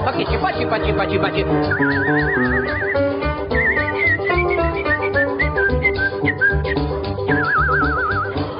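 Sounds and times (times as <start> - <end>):
instrumental backing music: 0.0 - 8.5
speech: 0.1 - 3.3
person whistling a melody with vibrato: 1.6 - 8.5.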